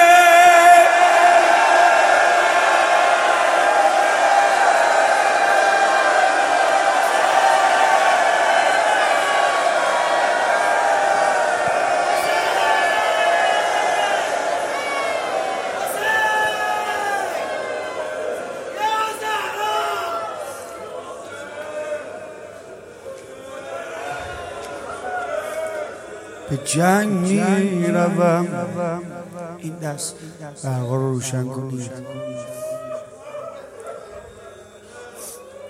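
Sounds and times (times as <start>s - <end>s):
large crowd shouting a name in unison: 0.0s - 20.6s
speech: 26.7s - 29.1s, 29.7s - 32.3s.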